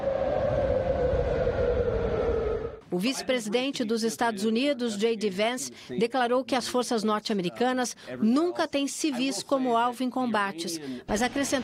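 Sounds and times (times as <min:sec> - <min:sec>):
siren wailing at a US military base in Kuwait: 0:00.0 - 0:02.8
speech: 0:02.9 - 0:11.6.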